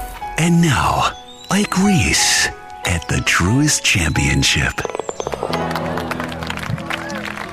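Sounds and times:
speech: 0.4s - 5.6s
crowd applauding and cheering: 4.8s - 7.5s.

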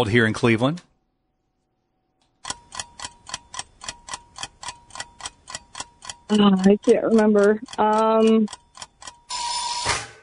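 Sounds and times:
speech: 0.0s - 0.9s, 6.3s - 8.6s
rapid clock-like quiz timer ticks: 2.4s - 9.5s
loud harsh quiz timer buzzer: 9.3s - 10.2s
short electronic quiz timer tone: 9.3s - 10.2s.

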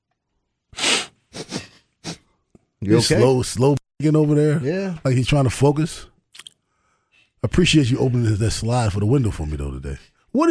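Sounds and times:
congested sniffling from a person with a bad cold: 0.8s - 2.3s
speech: 2.8s - 6.1s, 7.4s - 10.4s.

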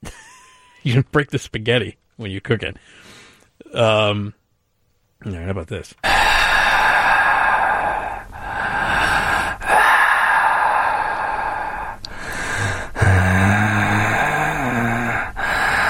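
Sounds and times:
speech: 0.8s - 4.4s, 5.2s - 6.4s
loud heavy rasping breathing: 2.8s - 3.6s, 6.0s - 15.8s.

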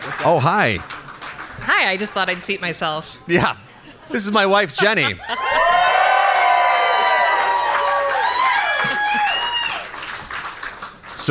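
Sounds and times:
people clapping: 0.0s - 2.6s, 5.4s - 11.2s
speech: 0.1s - 1.0s, 1.6s - 5.6s
laughter: 3.3s - 6.0s
large audience cheering and whooping: 4.8s - 10.7s.

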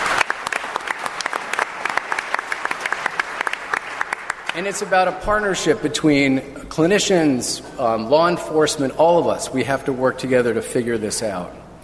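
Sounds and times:
audience applause: 0.0s - 4.7s
speech: 4.6s - 11.6s.

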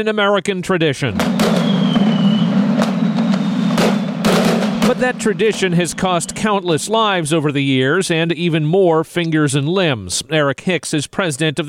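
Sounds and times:
speech: 0.0s - 1.8s, 4.9s - 11.6s
steady low rumble: 1.1s - 7.2s
fireworks exploding: 1.1s - 7.3s
faint high whistle: 1.4s - 6.9s.

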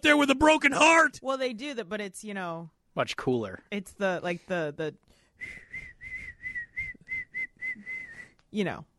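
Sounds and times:
speech: 0.0s - 5.6s, 8.5s - 8.9s
person whistling a bouncy phrase: 5.4s - 8.4s.

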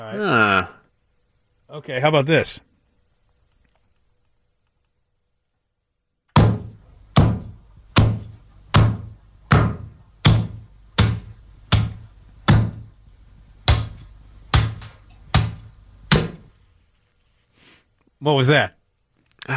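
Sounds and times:
speech: 0.1s - 0.8s, 1.7s - 2.7s, 18.2s - 18.8s
heavy chopping thuds: 6.4s - 12.9s, 13.6s - 16.5s.

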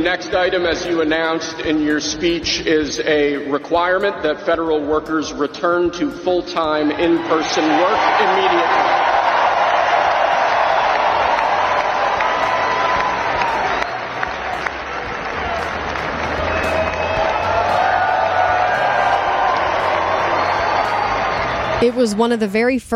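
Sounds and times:
speech: 0.0s - 9.0s, 21.8s - 22.9s
huge arena crowd screaming and cheering: 7.0s - 22.0s
scattered applause: 7.3s - 21.8s.

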